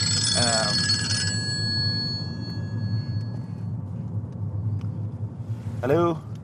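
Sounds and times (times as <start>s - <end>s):
telephone bell ringing: 0.0s - 3.5s
steady low rumble: 0.0s - 6.4s
speech: 5.8s - 6.3s.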